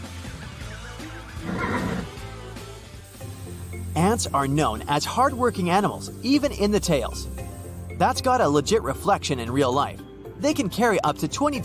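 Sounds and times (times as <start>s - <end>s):
horse whinnying: 1.4s - 2.2s
speech: 4.0s - 7.4s, 8.0s - 11.6s.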